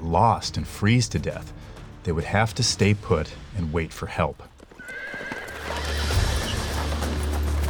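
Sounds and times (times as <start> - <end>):
speech: 0.1 - 4.5
hooves of horse-drawn sleighs clip-clopping in a storm: 3.7 - 7.6
horse whinnying: 4.7 - 7.2.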